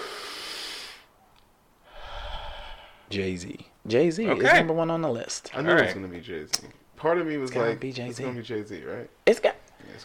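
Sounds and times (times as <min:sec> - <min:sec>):
deep breath: 0:00.0 - 0:01.1, 0:01.8 - 0:03.1
speech: 0:03.1 - 0:10.0.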